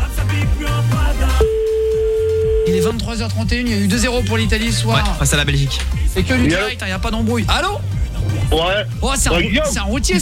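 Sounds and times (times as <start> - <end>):
repeating musical backing: 0.0 - 10.1
telephone line ringing out after a call placed from radio software: 1.4 - 2.8
speech: 2.9 - 7.9, 8.5 - 10.1.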